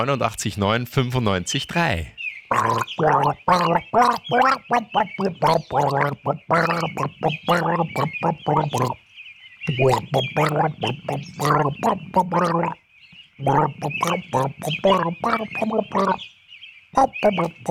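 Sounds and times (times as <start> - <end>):
speech: 0.0 - 9.0, 9.6 - 12.8, 13.4 - 17.6
person gargling a song melody: 2.5 - 9.0, 9.7 - 12.8, 13.4 - 16.2, 17.0 - 17.6.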